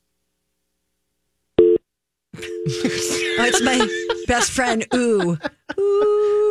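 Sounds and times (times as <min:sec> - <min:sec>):
telephone busy signal, loud steady electronic tone beeping: 0:02.4 - 0:04.4
laughter: 0:02.4 - 0:06.4
speech: 0:02.6 - 0:06.4.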